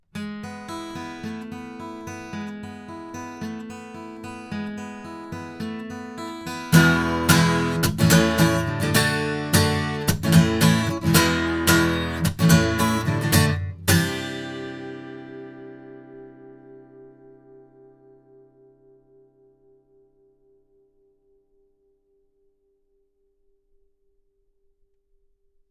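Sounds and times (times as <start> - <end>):
guitar playing: 0.1 - 19.8.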